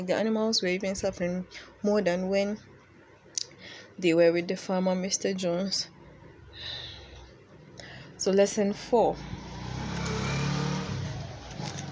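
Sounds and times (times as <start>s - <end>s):
speech: 0.0s - 2.7s, 4.0s - 5.9s, 8.2s - 9.4s
motorbike riding past the house: 8.8s - 11.9s.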